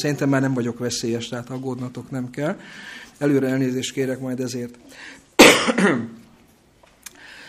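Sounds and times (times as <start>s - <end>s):
speech: 0.0s - 6.2s
person with unclear bronchi coughing while recovering from an illness: 5.4s - 6.2s.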